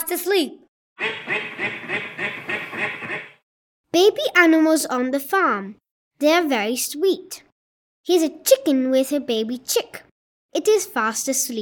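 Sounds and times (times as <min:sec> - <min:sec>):
speech: 0:00.1 - 0:02.1, 0:03.9 - 0:11.6
duck with her duckling quacking: 0:01.0 - 0:03.4.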